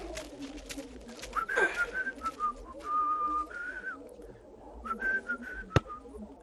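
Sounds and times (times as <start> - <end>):
man whistling while digging a grave: 1.4 - 4.0, 4.8 - 6.0.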